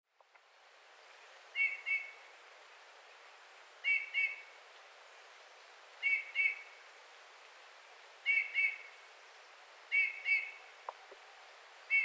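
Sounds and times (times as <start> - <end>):
faint background hiss: 0.1 - 12.0
Eurasian bullfinch giving soft piping whistled calls: 1.6 - 2.2, 3.8 - 4.4, 6.0 - 6.7, 8.2 - 8.9, 9.9 - 10.7, 11.3 - 12.0.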